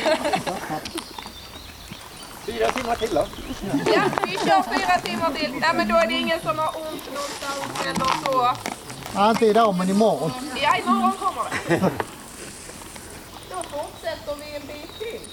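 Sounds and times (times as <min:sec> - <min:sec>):
people laughing: 0:00.0 - 0:01.0, 0:03.4 - 0:06.5, 0:10.8 - 0:12.2
Icelandic horses walking with clip-clopping hooves on a horseback ride: 0:00.0 - 0:15.3
speech: 0:02.6 - 0:12.1.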